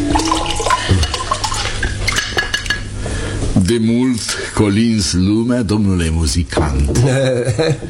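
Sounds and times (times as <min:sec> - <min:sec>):
light clinks of dishes and cutlery: 0:00.1 - 0:02.9
water pouring: 0:00.1 - 0:02.9
speech: 0:03.7 - 0:07.8.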